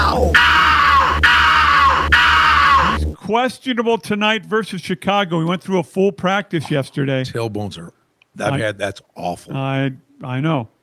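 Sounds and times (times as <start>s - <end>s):
loud sustained shrill screams: 0.0s - 3.2s
steady low hum: 0.0s - 3.2s
speech: 3.3s - 10.7s.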